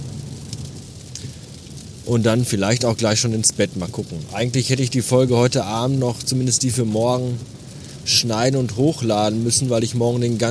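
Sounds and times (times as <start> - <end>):
low rumble under the rain: 0.0 - 10.5
pouring rain at night in the Ruhr area of Germany: 0.0 - 10.5
speech: 2.1 - 10.5.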